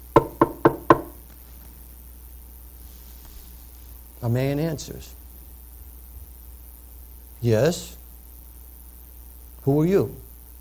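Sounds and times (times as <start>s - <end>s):
firm knocking on a wooden door: 0.2s - 1.2s
speech: 4.2s - 5.2s, 7.4s - 8.0s, 9.6s - 10.2s.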